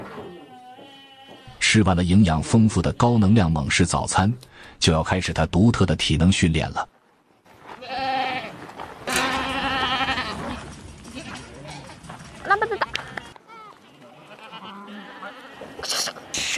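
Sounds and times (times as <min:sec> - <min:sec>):
sheep bleating as they are herded on a farm: 0:00.0 - 0:01.6, 0:07.8 - 0:10.6, 0:13.0 - 0:15.7
speech: 0:01.7 - 0:07.0.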